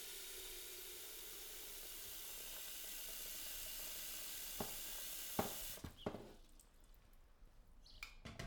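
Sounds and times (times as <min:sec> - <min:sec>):
tap water running into a pot: 0:00.0 - 0:06.2.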